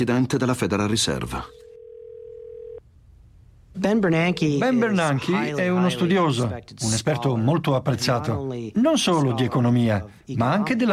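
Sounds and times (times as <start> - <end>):
speech: 0.0 - 1.6, 3.8 - 10.9
telephone dial tone as a receiver is lifted: 1.6 - 2.8.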